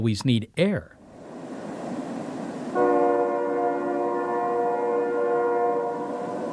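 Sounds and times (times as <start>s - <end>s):
speech: 0.0s - 1.0s
low rumble of rail noise: 0.8s - 6.5s
distant train horn: 2.8s - 6.5s.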